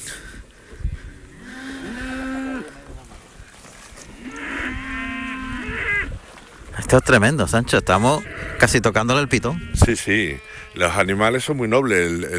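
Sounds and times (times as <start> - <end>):
fighting-bull breed cow mooing: 1.3 - 3.0, 4.1 - 6.1, 7.9 - 11.1
speech: 6.9 - 12.3.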